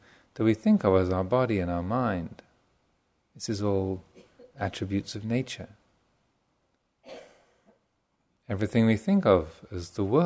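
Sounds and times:
speech: 0:00.4 - 0:02.4, 0:03.4 - 0:05.8, 0:08.5 - 0:10.2
single soft cough from a person in a room: 0:04.1 - 0:04.6, 0:07.0 - 0:07.8.

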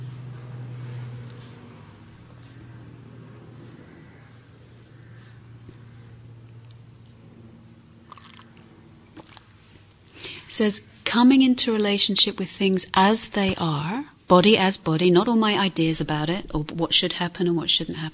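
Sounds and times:
helicopter flying overhead: 0:00.0 - 0:09.2
speech: 0:10.6 - 0:18.1.

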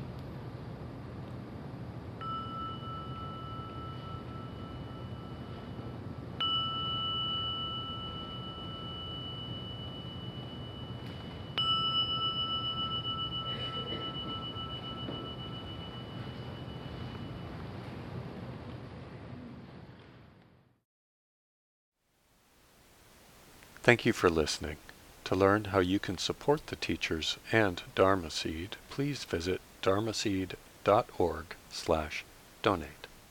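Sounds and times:
steady hiss: 0:00.0 - 0:20.2, 0:22.0 - 0:33.2
meditation gong struck at the close of a guided session: 0:02.2 - 0:17.6
speech: 0:23.9 - 0:33.0.

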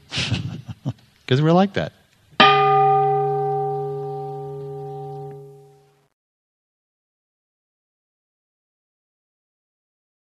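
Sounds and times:
speech: 0:01.3 - 0:02.0
meditation bell ringing: 0:02.4 - 0:05.8.

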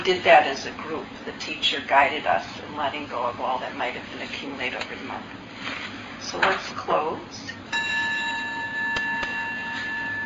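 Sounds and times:
speech: 0:00.0 - 0:07.6
meditation bell ringing: 0:07.7 - 0:10.2.

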